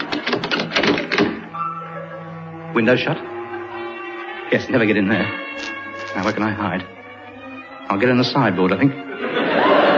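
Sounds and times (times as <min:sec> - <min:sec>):
door being bolted shut: 0:00.0 - 0:01.4
speech: 0:02.8 - 0:03.3, 0:04.5 - 0:05.5, 0:06.2 - 0:07.0, 0:07.9 - 0:09.0
laughter: 0:09.0 - 0:09.9.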